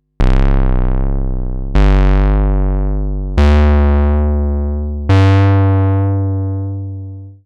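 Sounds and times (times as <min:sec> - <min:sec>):
single oscillator modulated Model 15 synthesizer: 0:00.2 - 0:07.4.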